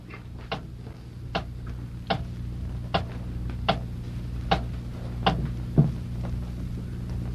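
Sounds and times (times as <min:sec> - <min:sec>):
low hum: 0:00.0 - 0:07.3
clock ticking: 0:02.1 - 0:02.3, 0:04.5 - 0:05.4.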